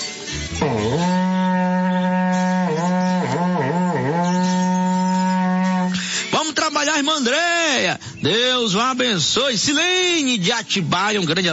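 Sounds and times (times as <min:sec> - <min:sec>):
berrante cattle horn blowing a long note: 0:00.3 - 0:06.1
speech: 0:07.0 - 0:11.5.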